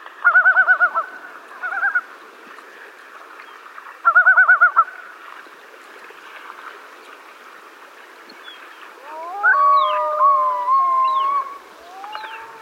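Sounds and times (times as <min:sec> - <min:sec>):
faint hiss: 0:00.0 - 0:12.6
common loons tremolo yodelling on a lake: 0:09.0 - 0:12.6.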